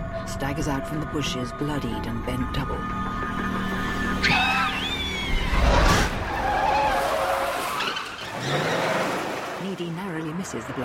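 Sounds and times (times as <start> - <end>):
speech: 0.4 - 3.5, 9.7 - 10.8
car tires squealing while skidding to a halt on an unlit country road: 4.1 - 9.5.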